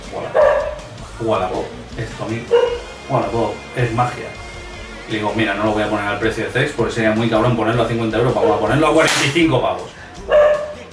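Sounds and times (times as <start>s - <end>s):
dog barking: 0.3s - 0.9s, 2.5s - 2.9s, 10.3s - 10.8s
speech: 1.2s - 4.4s, 5.1s - 10.4s.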